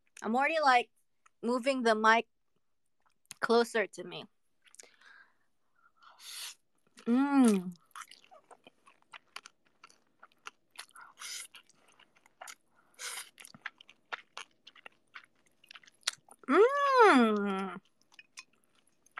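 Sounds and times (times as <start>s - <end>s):
speech: 0.2s - 2.4s, 3.4s - 4.4s, 7.1s - 7.8s, 16.5s - 17.9s
person moaning or humming with enjoyment: 7.0s - 7.7s
wet chewing and slurping of noodles: 7.8s - 16.5s, 17.8s - 19.1s.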